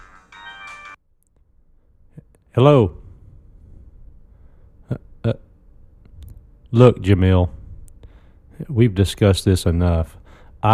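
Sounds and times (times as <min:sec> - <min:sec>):
phone ringing with a bright electronic tone: 0:00.0 - 0:01.0
speech: 0:02.6 - 0:03.0, 0:04.9 - 0:05.4, 0:06.7 - 0:07.6, 0:08.6 - 0:10.7.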